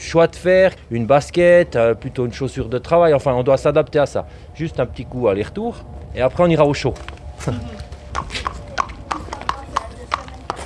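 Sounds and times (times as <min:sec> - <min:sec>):
low rumble: 0:00.0 - 0:10.5
speech: 0:00.1 - 0:08.5
horse hooves clopping at a slow walk: 0:06.7 - 0:10.6
faint murmur of voices: 0:07.4 - 0:10.6.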